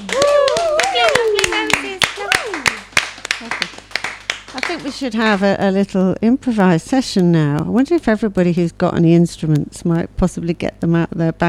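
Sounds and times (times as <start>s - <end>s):
voices whooping and cheering: 0.0s - 2.8s
audience clapping: 0.0s - 5.6s
speech: 4.7s - 11.4s.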